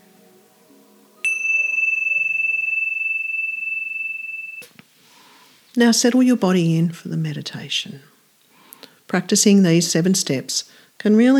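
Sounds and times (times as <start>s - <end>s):
meditation bell struck to begin a meditation: 1.2s - 4.8s
speech: 5.8s - 8.1s, 9.1s - 11.3s.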